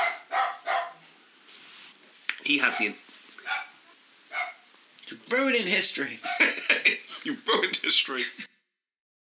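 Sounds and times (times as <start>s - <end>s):
dog barking: 0.0s - 1.0s, 2.6s - 4.7s
speech: 2.5s - 3.0s, 5.3s - 8.5s
laughter: 6.0s - 8.5s.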